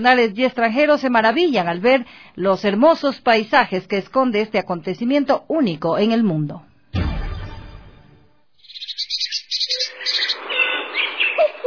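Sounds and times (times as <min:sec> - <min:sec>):
speech: 0:00.0 - 0:07.0
low rumble: 0:07.0 - 0:08.4
wild birds chirping amid flowering guayacán trees in Loja province, Ecuador: 0:08.6 - 0:11.6.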